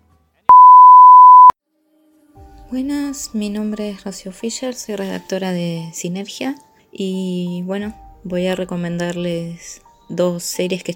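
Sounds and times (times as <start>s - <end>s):
answering machine beep: 0.5s - 1.5s
speech: 2.7s - 10.9s.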